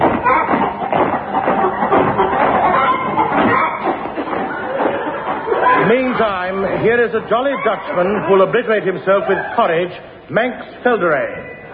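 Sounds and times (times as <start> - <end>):
flock of chickens clucking and squawking: 0.0 - 6.4
laughter: 0.5 - 9.7
speech: 6.2 - 11.6.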